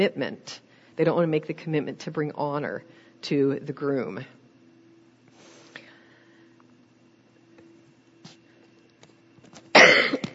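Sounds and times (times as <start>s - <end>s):
speech: 0.0s - 4.4s
loud cough: 9.7s - 10.3s
person clearing throat: 9.8s - 10.3s.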